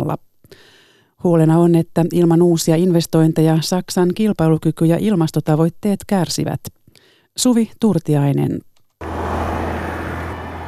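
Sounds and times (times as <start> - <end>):
speech: 0.1 - 6.8, 7.4 - 8.7
broadband road noise: 9.0 - 10.6
dense congested city-square traffic rumbling with cars idling and creeping: 9.0 - 10.6.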